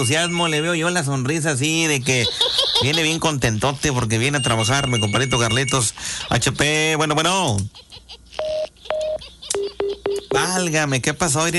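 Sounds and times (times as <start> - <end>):
speech: 0.0 - 8.0, 10.4 - 11.5
noise: 0.0 - 11.5
telephone tones as a phone call is cut off: 4.3 - 5.9, 8.4 - 10.4.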